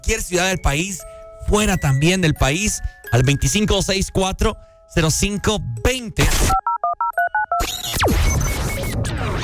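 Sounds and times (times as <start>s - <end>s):
speech: 0.0s - 6.7s
telephone keypad tones: 6.5s - 7.6s
noisy whooshing and crackling sound effects: 8.0s - 9.4s.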